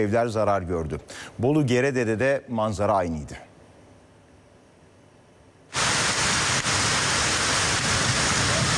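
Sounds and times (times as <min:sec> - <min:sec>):
speech: 0:00.0 - 0:03.5
heavy rain during a storm: 0:05.8 - 0:08.7.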